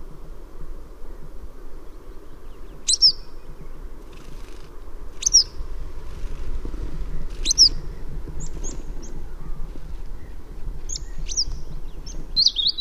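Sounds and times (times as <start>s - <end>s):
steady low rumble: 0.0s - 12.7s
Western yellow wagtail giving sharp high slurred calls: 2.6s - 5.6s, 7.2s - 12.7s.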